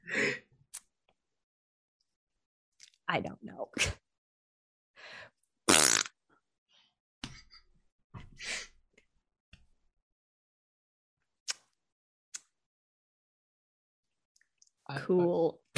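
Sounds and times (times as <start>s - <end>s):
speech: 3.1s - 4.0s, 14.9s - 15.6s
person making mouth fart noises: 5.7s - 6.2s
brief clicks: 11.5s - 11.7s.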